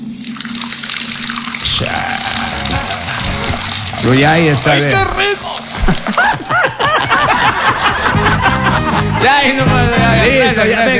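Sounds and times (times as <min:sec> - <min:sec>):
water pouring and splashing from a bucket: 0:00.0 - 0:06.6
laughter: 0:01.6 - 0:10.9
speech: 0:01.8 - 0:02.3, 0:04.0 - 0:06.6, 0:09.0 - 0:10.9.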